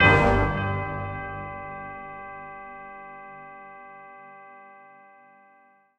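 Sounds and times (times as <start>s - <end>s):
brass bell stab in G minor: 0.0s - 3.5s.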